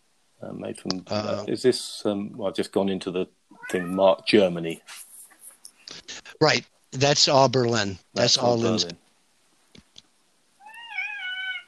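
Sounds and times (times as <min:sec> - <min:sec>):
speech: 0:00.4 - 0:05.0, 0:06.4 - 0:09.0
cat meowing: 0:03.6 - 0:04.5, 0:10.6 - 0:11.6.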